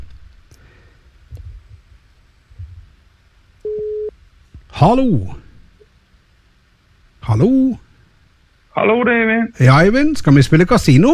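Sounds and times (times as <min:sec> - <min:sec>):
telephone ringing tone on an outgoing call: 0:03.7 - 0:04.1
speech: 0:04.8 - 0:05.4, 0:07.3 - 0:07.8, 0:08.8 - 0:11.1.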